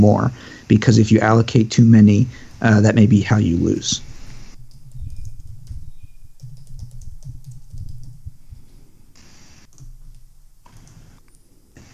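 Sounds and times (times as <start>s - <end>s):
speech: 0.0s - 4.1s
several people typing on computer keyboards during an online strategy board game: 4.6s - 8.3s, 9.7s - 11.5s.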